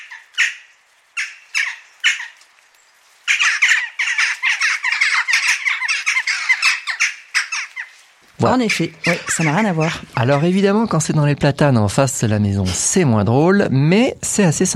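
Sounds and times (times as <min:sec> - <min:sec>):
jackdaw calls: 0:00.0 - 0:11.6
jackdaw flock chorus of overlapping calls: 0:00.0 - 0:13.3
speech: 0:08.4 - 0:14.7.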